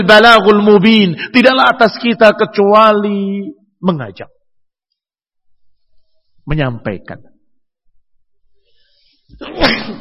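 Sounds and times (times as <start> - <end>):
speech: 0.0 - 4.4, 6.5 - 7.3, 9.4 - 10.0
single loud sneeze: 9.3 - 10.0.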